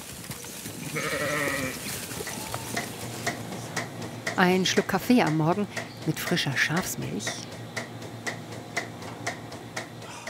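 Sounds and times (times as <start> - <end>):
steady rustling crackling background: 0.0 - 3.9
sheep bleating at a shepherd's farm on Eiderstedt: 0.8 - 2.9
speech: 0.9 - 1.8, 4.4 - 7.6.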